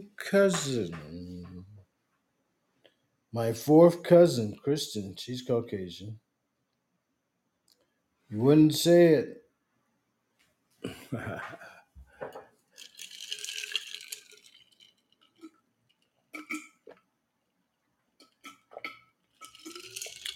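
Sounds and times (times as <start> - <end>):
speech: 0.0 - 1.2, 3.3 - 6.2, 8.3 - 9.4, 10.8 - 11.7
person gulping water: 10.8 - 15.6, 16.3 - 17.1, 18.2 - 20.3.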